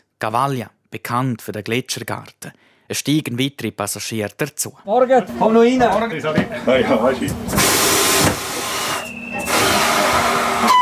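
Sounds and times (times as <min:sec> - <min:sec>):
speech: 0:00.2 - 0:07.8
hissing air bursts from an old electromechanical electric railcar at a station stop: 0:07.5 - 0:10.7.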